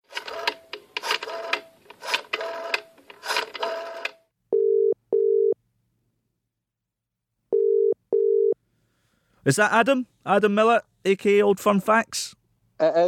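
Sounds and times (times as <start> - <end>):
old-fashioned telephone ringing tone on an outgoing call: 3.6 - 5.6, 7.5 - 8.6
speech: 9.5 - 13.0.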